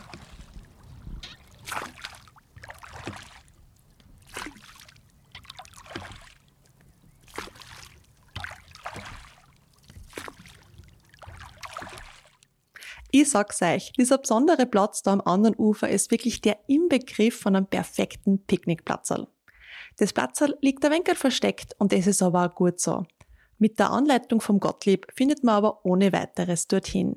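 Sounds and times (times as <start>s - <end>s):
oars rowing a boat through calm lake water: 0.0s - 13.2s
speech: 13.2s - 19.3s, 20.0s - 27.1s.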